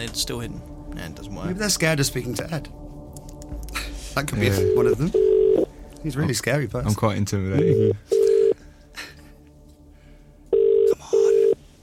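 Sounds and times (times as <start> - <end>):
speech: 0.0 - 2.9, 3.5 - 5.3, 6.0 - 8.1
telephone ringback tone of an outgoing call: 4.5 - 5.7, 7.6 - 8.6, 10.5 - 11.6.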